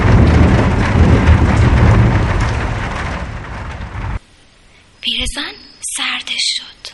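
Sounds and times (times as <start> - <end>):
clay pots and jugs rattling on a wall niche: 0.0 - 4.2
deep rumble of thunder: 0.0 - 4.2
heavy downpour: 0.0 - 4.2
speech: 5.3 - 6.9.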